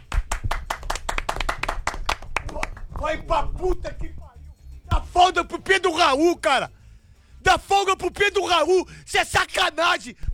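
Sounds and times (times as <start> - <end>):
hand clapping in a round of applause: 0.0 - 5.9
speech: 3.1 - 4.2, 5.0 - 6.8, 7.4 - 10.3.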